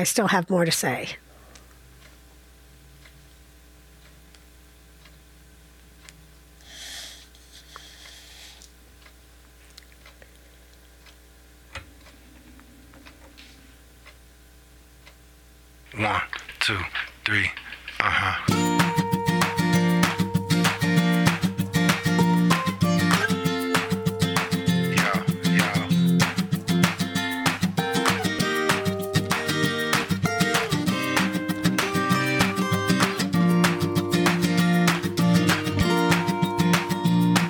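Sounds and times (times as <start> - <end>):
speech: 0.0 - 1.2, 16.0 - 18.5
catchy pop song with a driving beat: 18.0 - 37.4.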